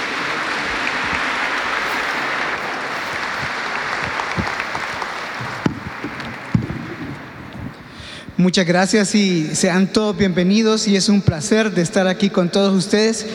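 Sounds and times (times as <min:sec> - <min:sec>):
audience applause welcoming a speaker: 0:00.0 - 0:07.9
speech: 0:08.4 - 0:13.3.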